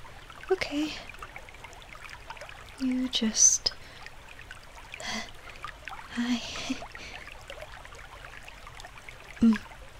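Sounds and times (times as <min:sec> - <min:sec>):
river water trickling: 0:00.0 - 0:09.9
speech: 0:00.5 - 0:01.2, 0:02.8 - 0:03.8, 0:06.2 - 0:06.9, 0:09.4 - 0:09.7
brief low vocal sounds: 0:09.4 - 0:09.7.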